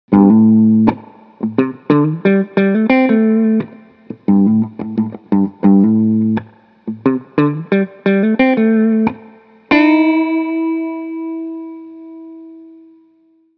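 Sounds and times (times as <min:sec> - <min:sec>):
clean octave guitar notes: 0:00.1 - 0:13.5.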